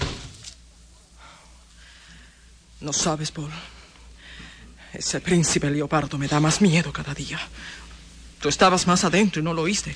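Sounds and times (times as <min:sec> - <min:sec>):
door slamming shut: 0:00.0 - 0:00.5
speech: 0:02.8 - 0:03.8, 0:05.0 - 0:09.9.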